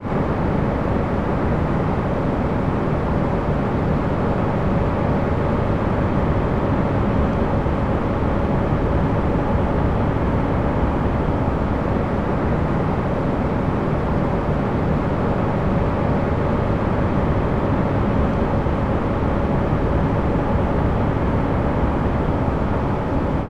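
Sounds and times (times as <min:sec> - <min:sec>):
air conditioning unit humming close up: 0:00.0 - 0:23.4.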